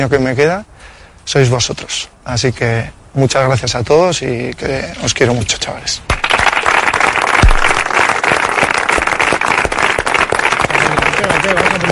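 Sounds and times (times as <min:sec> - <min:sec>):
speech: 0:00.0 - 0:06.2, 0:11.2 - 0:11.9
group of people applauding in a room: 0:06.1 - 0:11.9.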